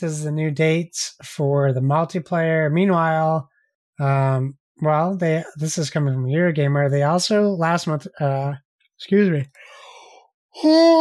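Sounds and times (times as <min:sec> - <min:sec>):
speech: 0:00.0 - 0:09.7, 0:10.6 - 0:11.0
man yawning: 0:10.6 - 0:11.0.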